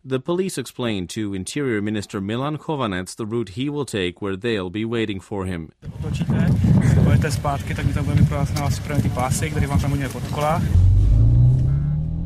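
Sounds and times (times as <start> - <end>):
speech: 0.0 - 10.9
white Škoda Octavia engine rumbling on a road near an airport: 7.2 - 12.2.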